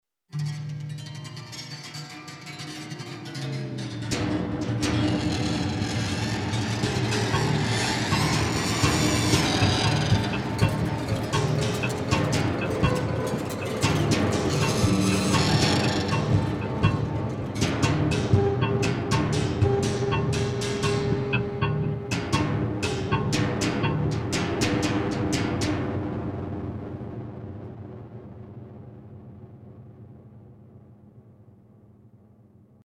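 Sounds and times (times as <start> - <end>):
zither cacophony: 0.3 - 26.6.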